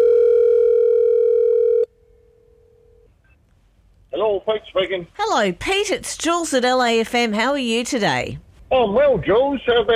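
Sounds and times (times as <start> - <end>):
outgoing telephone call ringing tone as a steady electronic hum: 0.0 - 3.1
speech: 4.5 - 9.9.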